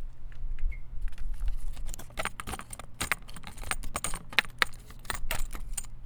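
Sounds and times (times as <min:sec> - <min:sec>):
metal rattling: 0:01.4 - 0:06.0.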